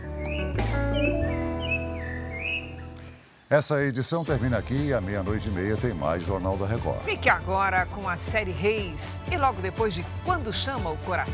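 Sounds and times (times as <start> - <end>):
birds singing: 0.0 - 3.2
speech: 3.5 - 11.3.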